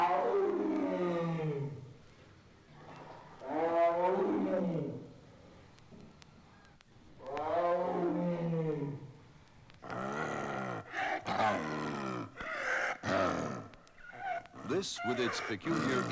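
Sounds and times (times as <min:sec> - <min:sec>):
Sumatran tiger roaring calls: 0:00.0 - 0:01.9, 0:03.4 - 0:05.2, 0:07.2 - 0:09.2, 0:09.8 - 0:16.1
speech: 0:14.8 - 0:16.1.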